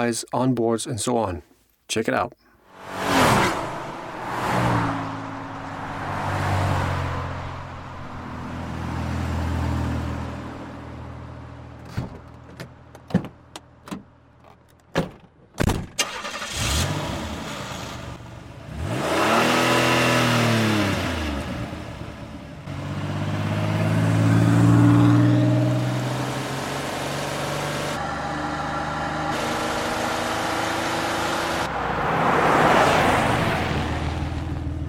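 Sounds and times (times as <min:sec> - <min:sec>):
speech: 0:00.0 - 0:03.0
1990 Chevrolet Beretta car engine revving: 0:02.7 - 0:11.3, 0:16.0 - 0:34.8.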